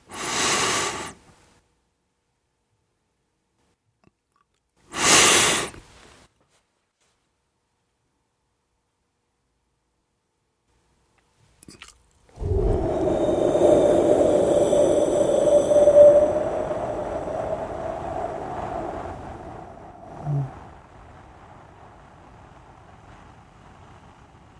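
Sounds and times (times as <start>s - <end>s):
short breathy bursts: 0.0s - 1.2s, 4.9s - 5.8s, 12.4s - 20.7s
slow exhale through the mouth during a breathing exercise: 0.0s - 1.2s, 4.9s - 5.8s, 12.4s - 20.9s.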